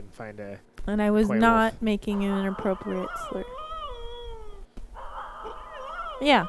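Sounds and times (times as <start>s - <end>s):
speech: 0.1s - 3.4s, 6.2s - 6.4s
wolf-like howl: 2.1s - 6.4s.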